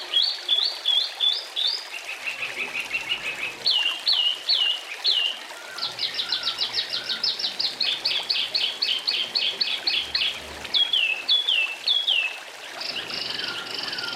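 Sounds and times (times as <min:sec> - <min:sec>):
Oriental magpie-robin song: 0:00.1 - 0:14.1
faint trickling background: 0:01.1 - 0:14.1.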